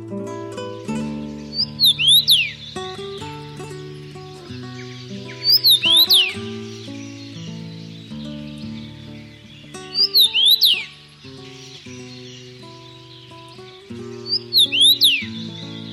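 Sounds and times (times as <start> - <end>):
common rosefinch singing: 0.0 - 15.9
soft instrumental music: 0.0 - 15.9.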